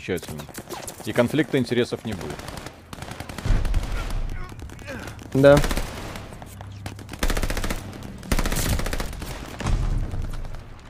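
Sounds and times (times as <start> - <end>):
speech: 0.0 - 2.6, 5.3 - 5.8
rapid automatic video game gunfire: 0.5 - 10.8.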